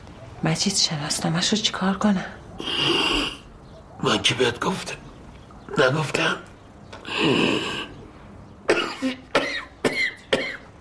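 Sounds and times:
speech: 0.4s - 3.0s, 4.0s - 5.0s, 5.8s - 6.5s, 7.1s - 7.8s
person coughing with a raspy hack: 8.7s - 10.7s.

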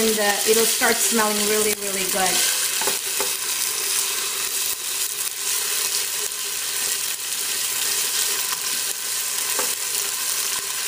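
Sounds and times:
speech: 0.0s - 2.6s
tomato paste sizzling in a hot pan: 0.0s - 10.8s.

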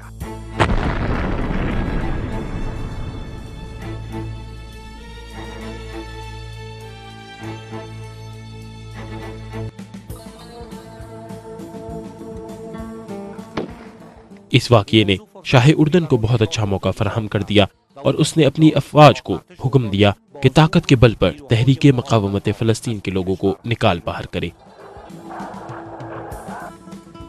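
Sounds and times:
powerful explosion of aircraft being blown up: 0.6s - 4.1s
speech: 14.5s - 24.7s.

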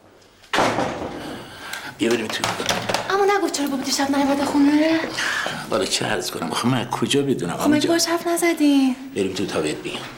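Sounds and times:
door being shut: 0.5s - 1.2s
speech: 2.0s - 10.1s.

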